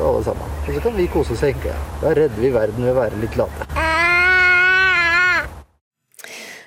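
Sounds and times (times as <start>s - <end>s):
speech: 0.2s - 3.9s
eight-month-old baby wailing: 3.7s - 5.5s.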